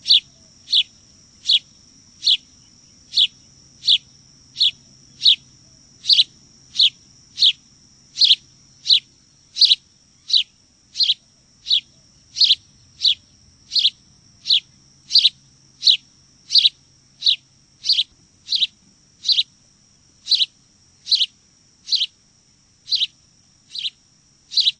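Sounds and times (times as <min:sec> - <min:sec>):
house sparrow chirping: 0:00.0 - 0:19.6, 0:20.2 - 0:22.2, 0:22.8 - 0:24.7.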